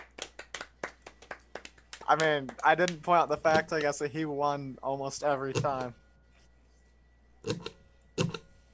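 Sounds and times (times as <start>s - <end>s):
speech: 2.1s - 6.0s
keyboard typing: 5.5s - 5.9s, 7.4s - 8.5s.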